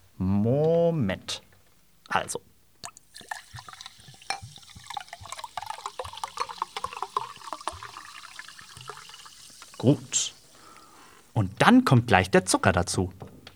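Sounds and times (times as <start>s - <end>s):
speech: 0.4s - 1.5s, 2.1s - 2.5s, 9.8s - 10.4s, 11.4s - 13.3s
half a litre of not quite cold water poured into a bowl: 2.8s - 11.4s.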